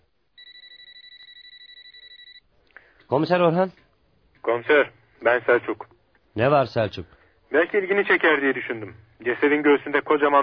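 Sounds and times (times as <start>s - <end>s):
telephone ringing with a rapid electronic trill: 0.4s - 2.5s
speech: 3.1s - 3.8s, 4.4s - 10.4s.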